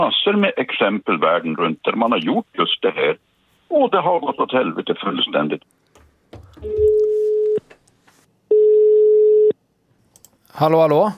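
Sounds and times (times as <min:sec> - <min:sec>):
speech: 0:00.0 - 0:05.8, 0:06.6 - 0:07.0, 0:10.6 - 0:11.1
telephone ringback tone while a call is being placed: 0:06.6 - 0:07.6, 0:08.5 - 0:09.5.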